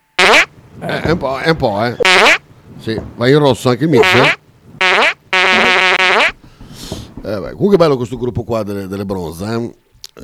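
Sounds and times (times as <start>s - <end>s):
loud buzzy farts: 0.2s - 0.5s, 2.0s - 2.4s, 4.0s - 6.4s
faint rustling: 0.5s - 10.2s
speech: 0.8s - 2.1s, 2.8s - 4.4s, 7.3s - 10.2s.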